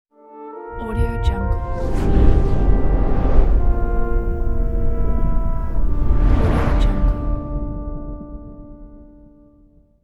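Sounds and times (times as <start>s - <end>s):
fire logo sound: 1.6s - 8.8s.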